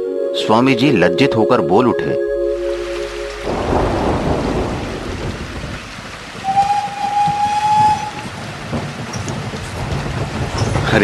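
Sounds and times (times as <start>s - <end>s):
speech: 0.4s - 2.3s
thin high tone: 0.4s - 5.0s
night thunderstorm with heavy rain at a railway station: 2.2s - 11.0s.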